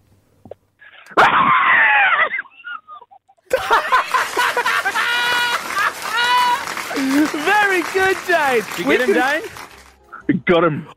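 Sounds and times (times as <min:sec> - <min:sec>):
several people screaming inside a car with its windows up: 0:01.2 - 0:02.4, 0:04.9 - 0:06.6
laughter: 0:01.2 - 0:09.6
speech: 0:08.3 - 0:09.6, 0:10.5 - 0:10.9.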